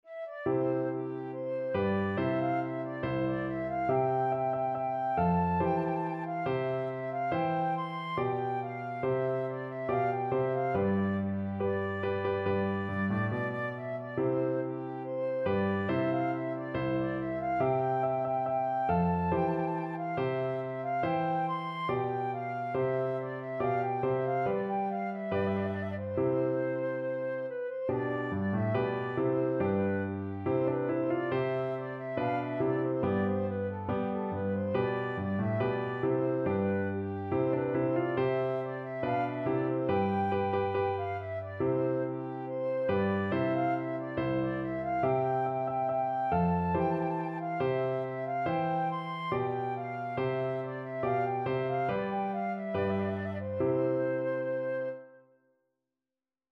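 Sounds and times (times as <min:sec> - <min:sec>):
flute playing: 0:00.0 - 0:55.4.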